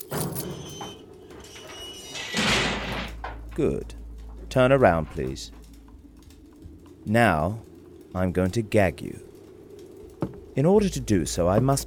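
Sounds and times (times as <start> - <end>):
heavy cell door sliding along its track and clanking shut: 0.1 - 5.8
speech: 3.6 - 5.6, 7.0 - 9.3, 10.6 - 11.8.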